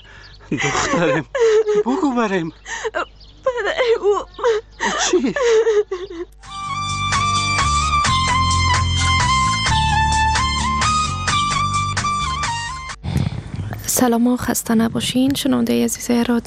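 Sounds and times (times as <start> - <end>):
laughter: 0.4 - 6.3
speech: 0.5 - 3.1, 3.8 - 6.4, 14.0 - 16.4
girl crying and whimpering in wavering sobs: 2.7 - 6.4
steady music: 6.4 - 13.0.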